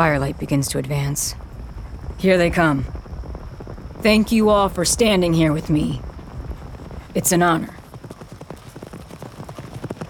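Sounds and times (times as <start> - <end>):
speech: 0.0 - 1.4, 2.2 - 3.0, 4.0 - 6.1, 7.1 - 7.8
horse hooves galloping: 0.0 - 10.0.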